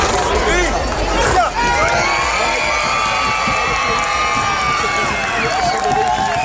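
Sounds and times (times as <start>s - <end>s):
large crowd shouting and cheering outdoors on a beach: 0.0s - 6.4s.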